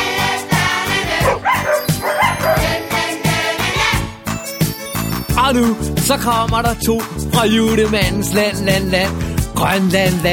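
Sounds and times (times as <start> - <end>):
dog barking: 1.2 - 2.8
bright busy musical jingle with a tinkling sparkle: 1.6 - 5.9
speech: 5.5 - 10.3.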